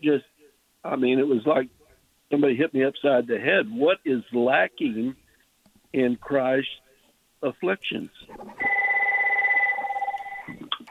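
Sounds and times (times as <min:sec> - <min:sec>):
speech: 0:00.0 - 0:05.2, 0:05.9 - 0:06.8, 0:07.4 - 0:08.7
electronic phone ringer trilling: 0:08.6 - 0:10.5.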